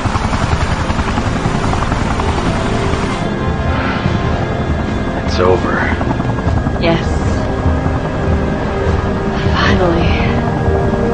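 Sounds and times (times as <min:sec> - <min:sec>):
video game helicopter rotor and engine roaring: 0:00.0 - 0:11.1
speech: 0:05.4 - 0:05.7.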